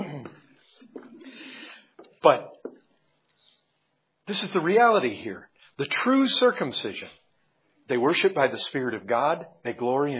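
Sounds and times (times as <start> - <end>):
person coughing: 0.0 - 1.4
speech: 2.2 - 2.6, 4.3 - 7.2, 7.9 - 10.1.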